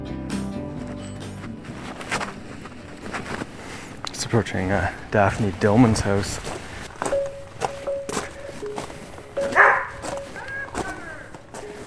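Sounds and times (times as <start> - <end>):
shuffling: 0.6 - 11.8
footsteps: 0.8 - 11.8
speech: 4.3 - 6.6
female husky dog barking at a visitor: 9.4 - 11.2.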